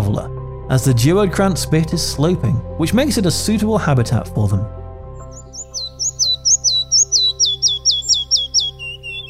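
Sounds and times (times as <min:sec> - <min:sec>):
speech: 0:00.2 - 0:04.8
red-breasted flycatcher singing: 0:05.2 - 0:09.2.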